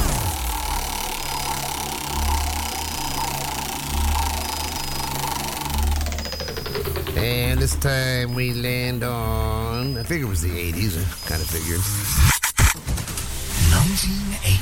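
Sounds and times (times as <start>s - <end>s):
spinning-wheel sound effect mechanical whirring rumble: 0.0s - 14.6s
speech: 7.2s - 12.4s, 13.9s - 14.6s.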